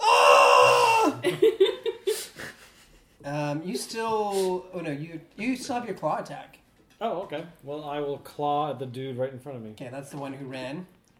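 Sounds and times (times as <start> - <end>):
single voice imitating a group yelling: 0.0 - 1.2
speech: 3.3 - 11.1.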